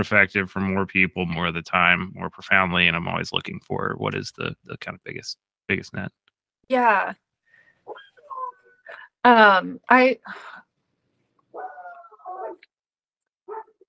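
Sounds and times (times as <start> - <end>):
speech: 0.0 - 7.2, 9.2 - 10.6
dog whining and yipping: 7.9 - 8.8, 11.5 - 12.6, 13.5 - 13.8
dog barking: 13.5 - 13.8.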